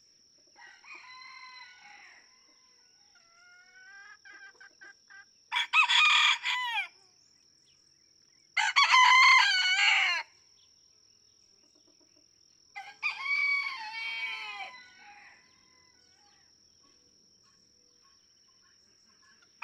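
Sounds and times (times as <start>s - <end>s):
several roosters crowing in a barnyard in Kentucky, USA: 0.6s - 2.6s, 5.5s - 7.0s, 8.6s - 10.3s, 12.8s - 16.2s.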